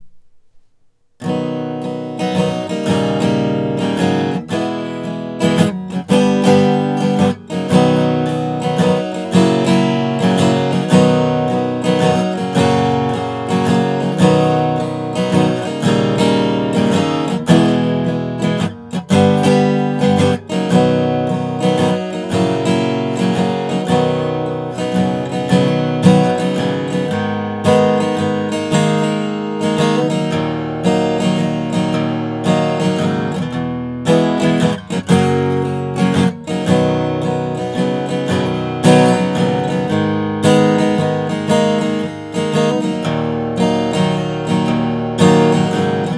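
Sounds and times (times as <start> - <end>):
guitar strum: 0.0 - 46.1.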